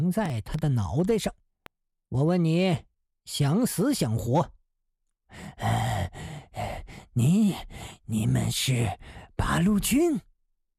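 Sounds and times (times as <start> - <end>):
speech: 0.1 - 1.4, 2.1 - 4.6, 5.3 - 6.2, 7.2 - 10.3
old man panting heavily: 5.3 - 8.0.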